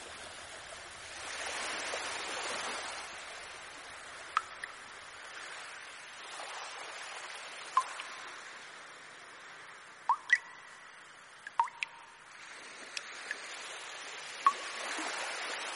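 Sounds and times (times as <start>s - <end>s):
soft steady hiss of flowing water: 0.0s - 15.7s
water drops plinking: 4.3s - 4.8s, 7.7s - 8.2s, 10.0s - 12.2s, 14.4s - 14.7s.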